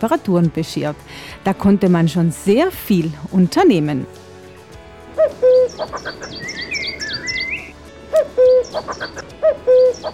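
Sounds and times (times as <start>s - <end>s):
speech: 0.0s - 4.2s, 5.8s - 6.6s, 8.7s - 10.1s
common cuckoo calling its two-note call: 5.2s - 10.1s
smaller woodland birds twittering and warbling: 5.2s - 10.1s.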